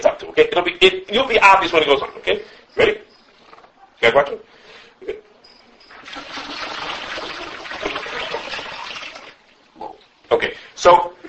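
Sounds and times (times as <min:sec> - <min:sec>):
speech: 0:00.6 - 0:03.0, 0:04.0 - 0:04.4, 0:10.8 - 0:11.1
water pouring into a container: 0:05.9 - 0:09.6.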